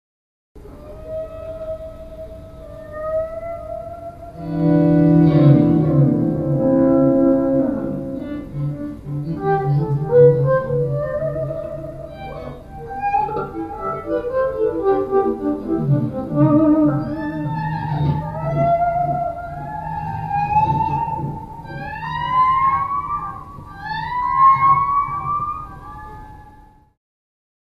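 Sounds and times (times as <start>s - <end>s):
musicians jamming in a jam session: 4.4s - 26.0s.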